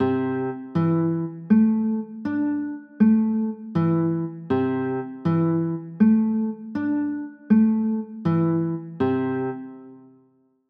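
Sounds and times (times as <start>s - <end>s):
C 6 9 chords: 0.0s - 10.0s.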